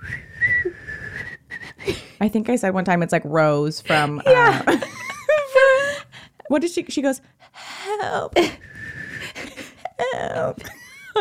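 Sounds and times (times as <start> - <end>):
loud shrill whistle blown: 0.0 - 1.9
speech: 2.2 - 5.0, 6.5 - 8.8, 10.3 - 11.1.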